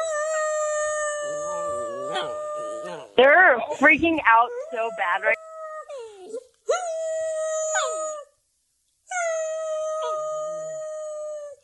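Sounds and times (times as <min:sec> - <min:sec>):
dog howling: 0:00.0 - 0:03.2, 0:05.4 - 0:08.2, 0:09.1 - 0:11.6
speech: 0:02.2 - 0:02.4, 0:03.2 - 0:05.4.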